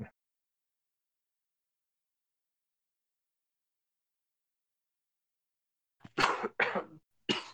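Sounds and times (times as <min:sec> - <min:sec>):
harsh raspy coughs: 0:06.1 - 0:07.5.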